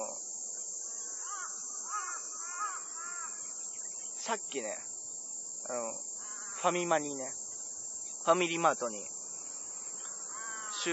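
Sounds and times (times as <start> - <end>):
constant high insect-like hiss: 0.0 - 10.9
crows cawing in an outdoor park: 0.9 - 3.7, 6.2 - 7.0, 9.5 - 10.9
speech: 4.3 - 4.9, 5.6 - 7.4, 8.2 - 9.2.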